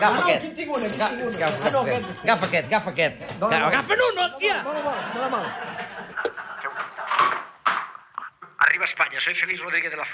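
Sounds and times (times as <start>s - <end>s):
speech: 0.0s - 6.4s, 8.8s - 10.1s
telephone ringing with electronic tone: 0.0s - 6.6s
laughter: 4.5s - 7.5s.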